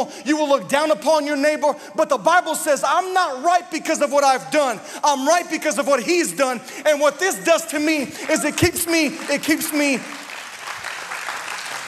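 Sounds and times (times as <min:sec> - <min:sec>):
speech: 0:00.0 - 0:10.2
audience clapping: 0:07.8 - 0:11.8.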